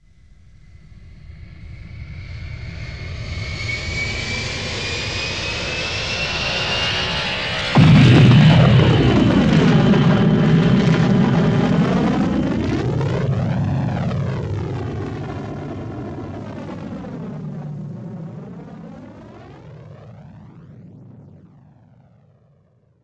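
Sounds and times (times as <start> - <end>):
ship taking off: 6.5 - 14.8.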